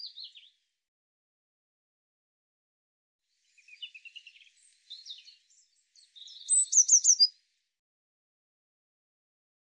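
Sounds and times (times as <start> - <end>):
Eurasian blue tit calls: 3.6 - 7.4.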